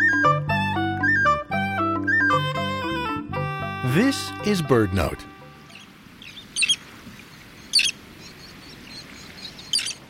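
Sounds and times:
roseate tern calling while flying along the Connecticut shoreline: 0:00.1 - 0:10.0
speech: 0:04.0 - 0:05.3.

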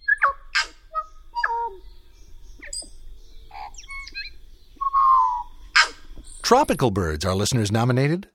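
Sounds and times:
tui song, New Zealand honeyeater with two voice boxes: 0:00.0 - 0:06.5
speech: 0:06.5 - 0:08.3.

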